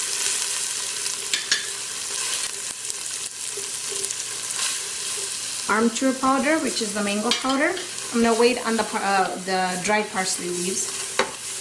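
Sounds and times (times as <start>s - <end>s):
spices frying in a pan: 0.0s - 11.6s
stirring clinks in a pan: 1.3s - 1.8s
speech: 5.7s - 11.0s.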